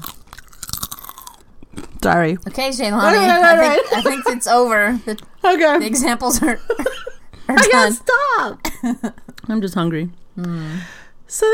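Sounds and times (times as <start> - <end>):
crunchy bites of gum: 0.0 - 2.1
wet chewing of gum with smacking mouth sounds: 0.0 - 2.1
speech: 2.0 - 11.5
laughter: 3.1 - 4.6.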